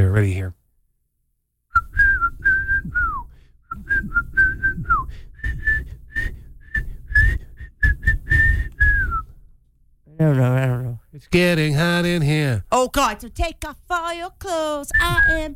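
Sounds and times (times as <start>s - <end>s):
speech: 0.2s - 0.6s, 10.2s - 15.5s
person whistling a catchy pop melody: 1.7s - 9.4s, 14.9s - 15.5s.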